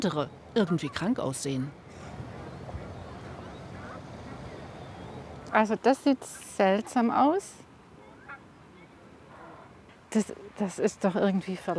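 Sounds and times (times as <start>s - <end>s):
speech: 0.0s - 1.8s, 5.5s - 7.6s, 10.1s - 11.7s
steady outdoor noise by the water: 0.0s - 11.7s
recovered geese honking and quacking by the water: 1.9s - 4.6s, 8.0s - 8.5s.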